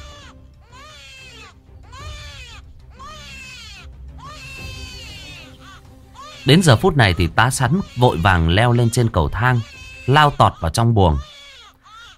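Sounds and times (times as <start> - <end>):
newborn baby crying loudly: 0.0 - 12.1
speech: 6.4 - 11.3.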